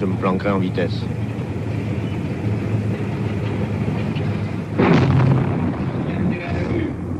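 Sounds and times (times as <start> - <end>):
speech: 0.0 - 1.3
steady rumbling noise: 0.0 - 7.1
Russian tank firing grapeshot against a wall: 4.7 - 7.0.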